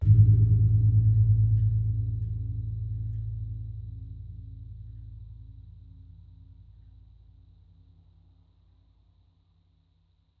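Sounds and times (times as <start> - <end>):
Gong Ageng of a gamelan: 0.0 - 5.3.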